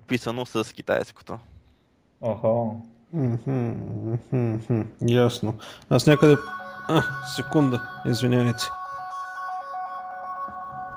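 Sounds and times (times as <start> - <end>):
speech: 0.1 - 1.5, 2.2 - 8.8
mobile phone ringing with bright electronic beeps: 5.9 - 10.9.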